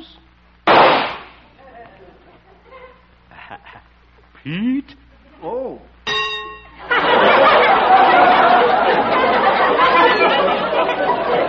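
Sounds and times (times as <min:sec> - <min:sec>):
rifle shot aimed at a bullseye target: 0:00.7 - 0:01.4
laughter: 0:01.6 - 0:03.9, 0:06.8 - 0:11.4
speech: 0:04.4 - 0:05.0.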